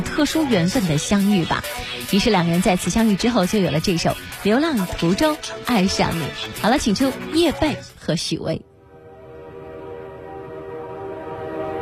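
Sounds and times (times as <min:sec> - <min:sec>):
speech: 0:00.2 - 0:08.7
train horn multi-tone blast: 0:08.8 - 0:11.8.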